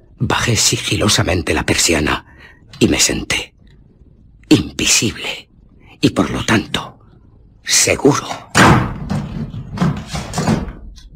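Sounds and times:
speech: 0.2s - 3.5s, 4.5s - 6.9s, 7.7s - 8.9s
forceful splintering impacts on a wooden door: 8.5s - 10.8s
wooden door panel being smashed in: 8.5s - 10.9s.

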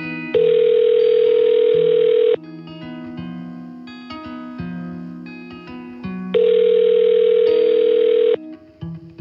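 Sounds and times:
telephone ringing tones on a telephone line: 0.3s - 2.4s, 6.4s - 8.4s.

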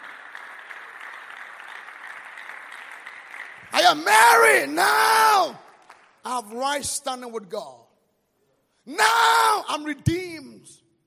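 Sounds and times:
audience clapping: 0.0s - 6.6s
speech: 3.9s - 7.8s, 8.9s - 10.8s.

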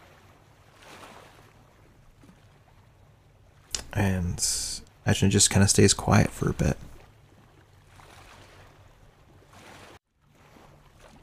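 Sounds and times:
sea waves washing around a rocking boat: 0.0s - 11.2s
water sloshing against the boat hull: 0.0s - 11.2s
speech: 4.0s - 6.9s.

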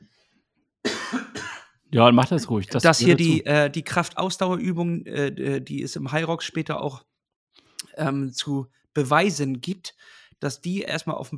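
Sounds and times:
person clearing throat: 0.9s - 1.7s, 3.0s - 3.4s
speech: 1.1s - 7.1s, 8.0s - 11.3s.

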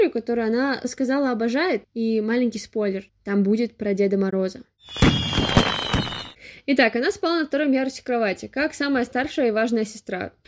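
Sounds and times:
speech: 0.1s - 5.6s, 6.6s - 10.4s
fireworks exploding: 4.8s - 6.4s
steady high whistling squeal: 4.8s - 6.4s.

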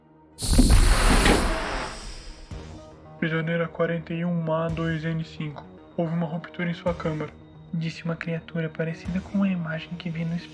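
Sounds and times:
door sliding open with pneumatic hiss: 0.4s - 2.6s
speech: 3.2s - 10.5s.

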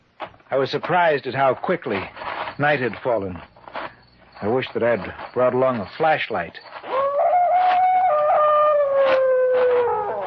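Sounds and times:
speech: 0.5s - 3.5s, 4.4s - 6.7s
dog howling in the distance: 6.8s - 10.2s.

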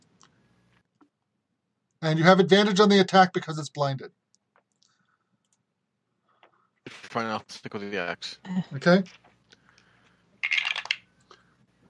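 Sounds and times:
speech: 2.0s - 4.2s, 7.1s - 9.2s
dice rolling on a tabletop in a tabletop role-playing game: 10.4s - 11.1s.

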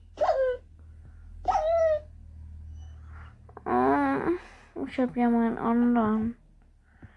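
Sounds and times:
faint low hum: 0.0s - 7.1s
video game dog yelping in pain when hit: 0.2s - 0.7s, 1.5s - 2.1s
speech: 4.9s - 6.4s.

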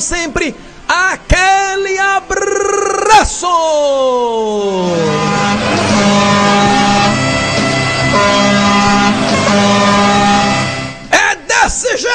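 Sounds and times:
speech: 0.0s - 2.6s, 3.2s - 5.7s
horn honking: 4.8s - 11.2s
vehicle rumbling: 5.0s - 11.0s.

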